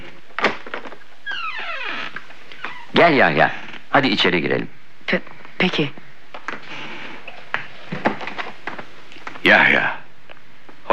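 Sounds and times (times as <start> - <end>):
door hinges creaking as door is opened: 0.4 - 3.9
speech: 3.0 - 6.0, 9.4 - 10.0.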